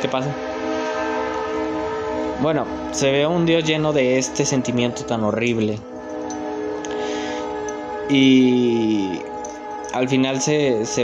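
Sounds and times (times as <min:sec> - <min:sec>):
speech: 0:00.0 - 0:00.5, 0:02.4 - 0:05.9, 0:08.1 - 0:09.3, 0:09.9 - 0:11.0
passing train horn blaring: 0:00.0 - 0:11.0.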